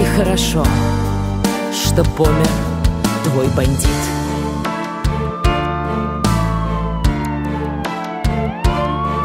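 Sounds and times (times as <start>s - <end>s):
speech: 0.2s - 1.0s, 1.7s - 2.7s, 3.3s - 4.2s
rhythmic thumping beats with sustained tones: 2.3s - 9.2s
police siren wailing: 3.9s - 9.2s.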